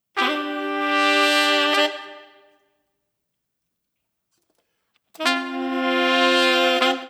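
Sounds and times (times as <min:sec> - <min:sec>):
nu jazz horns: 0:00.2 - 0:02.5, 0:05.2 - 0:07.0.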